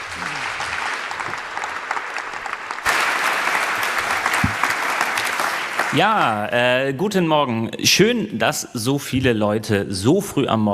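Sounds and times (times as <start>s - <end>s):
audience applauding: 0.0s - 6.5s
speech: 6.0s - 10.7s.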